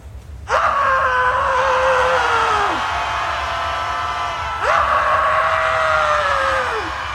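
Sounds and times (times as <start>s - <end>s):
large crowd screaming loudly: 0.5s - 7.1s.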